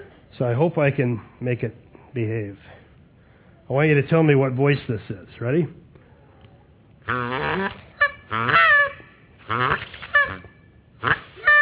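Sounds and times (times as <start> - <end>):
speech: 0.4 - 2.8, 3.7 - 5.8, 7.1 - 8.8, 9.5 - 10.0
Canada goose honking: 7.1 - 11.6.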